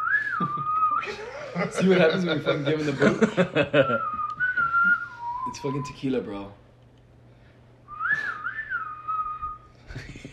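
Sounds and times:
person whistling a wavering tune: 0.0 - 1.2, 3.9 - 6.0, 7.9 - 9.7
faint hum: 0.0 - 10.3
laughter: 0.3 - 4.8
speech: 0.4 - 4.2, 5.5 - 6.6.

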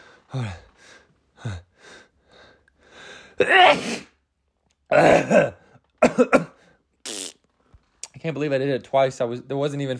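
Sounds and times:
speech: 0.3 - 1.6, 3.4 - 4.1, 8.3 - 9.9
loud sneezes: 3.4 - 4.2, 4.9 - 7.4.

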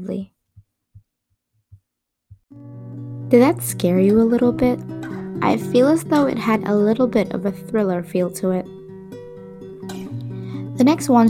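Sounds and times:
speech: 0.0 - 0.4, 3.3 - 8.7, 10.8 - 11.2
slow steady heartbeat thumping: 1.7 - 2.6.

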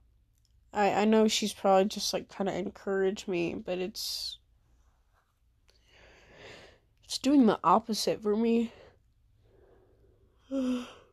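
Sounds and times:
speech: 0.8 - 4.4, 7.1 - 8.8, 10.5 - 11.0
person yawning with a low voiced groan: 10.5 - 11.1.

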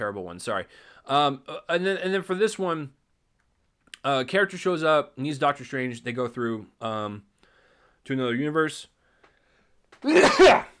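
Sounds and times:
speech: 0.0 - 3.0, 4.0 - 7.3, 8.0 - 8.9, 10.0 - 10.7
sneeze: 10.0 - 10.7.

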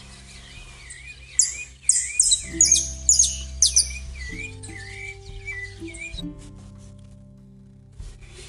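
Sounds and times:
small birds chirping: 0.0 - 6.5
low steady musical drone: 0.0 - 8.4.

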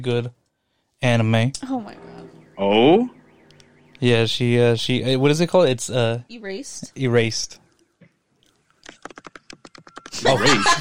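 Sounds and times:
speech: 0.0 - 0.4, 1.0 - 3.2, 4.0 - 7.6, 10.2 - 10.8
typing on a computer keyboard: 8.8 - 10.2
laughter: 10.2 - 10.8.

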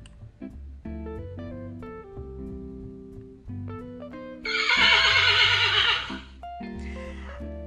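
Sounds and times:
bouncy instrumental tune: 0.0 - 7.6
loud shrill quavering horse whinny on a farm: 4.5 - 6.3.

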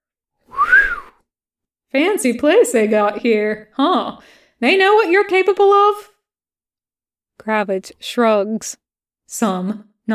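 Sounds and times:
soldier whistling a single short note: 0.5 - 1.2
speech: 1.9 - 6.1, 7.4 - 10.1.

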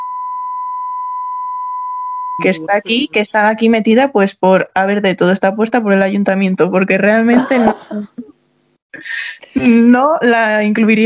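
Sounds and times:
steady continuous single-pitch beep tone: 0.0 - 3.5
speech: 2.4 - 8.3, 8.9 - 11.0
laughter: 7.3 - 8.3.

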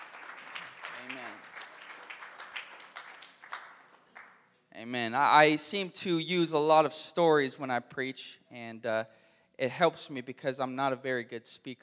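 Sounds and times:
seated crowd clapping hands: 0.0 - 4.5
speech: 4.8 - 11.8.

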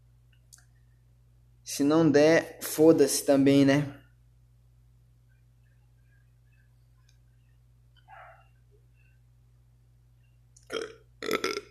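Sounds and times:
steady low hum: 0.0 - 11.6
speech: 1.7 - 4.0
loud raspy burps: 10.6 - 11.6.

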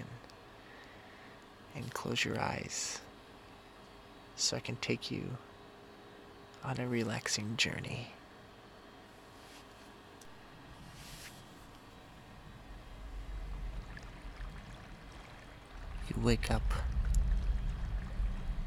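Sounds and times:
soft voice speaking: 1.7 - 3.1, 4.4 - 5.5, 6.6 - 8.2, 16.0 - 16.9
speech: 1.8 - 3.1, 4.4 - 5.5, 6.6 - 8.2, 16.2 - 17.0
steady rushing creek water: 12.6 - 18.6.

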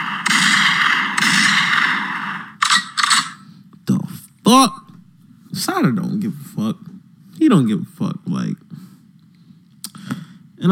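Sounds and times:
gunshot sound effect: 0.0 - 3.4
speech: 4.5 - 4.8, 5.8 - 8.6.

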